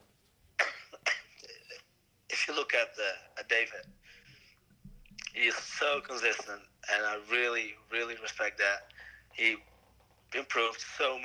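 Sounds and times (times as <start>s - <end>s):
person coughing: 0.6s - 1.9s
speech: 2.8s - 4.0s, 5.4s - 9.7s, 10.3s - 11.2s.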